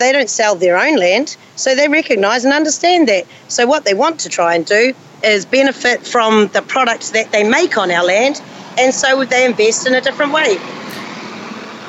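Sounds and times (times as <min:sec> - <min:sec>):
speech: 0:00.0 - 0:10.9
large vehicle engine rumble of a bus going past: 0:07.1 - 0:11.8.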